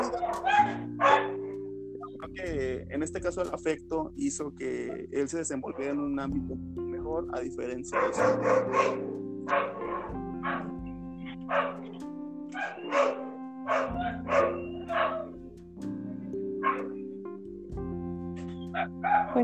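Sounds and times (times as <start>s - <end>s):
dogs barking: 0.0s - 2.3s, 7.8s - 17.1s, 18.4s - 19.4s
speech: 2.8s - 10.2s.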